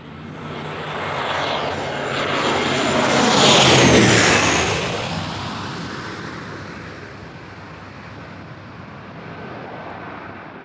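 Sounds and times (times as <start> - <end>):
airplane flyby: 0.0 - 10.6.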